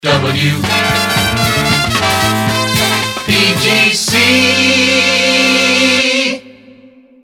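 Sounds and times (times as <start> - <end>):
jingle resings with horns: 0.2 - 5.9.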